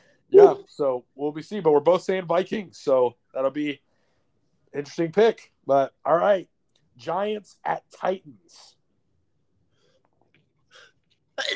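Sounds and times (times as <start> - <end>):
loud sneeze: 0.4 - 0.6
speech: 0.5 - 3.9, 4.7 - 8.8, 11.4 - 11.5.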